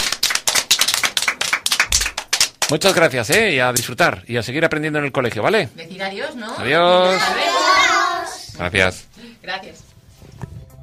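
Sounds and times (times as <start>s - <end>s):
audience applause at a school event: 0.0s - 2.9s
speech: 2.7s - 7.8s, 8.6s - 9.9s.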